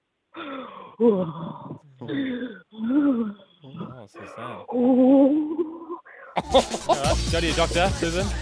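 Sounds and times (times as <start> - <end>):
speech: 0.4 - 2.4, 4.1 - 5.4, 6.4 - 8.4
woman breathing heavily with moaning breaths: 0.4 - 3.5
laughter: 6.4 - 8.4.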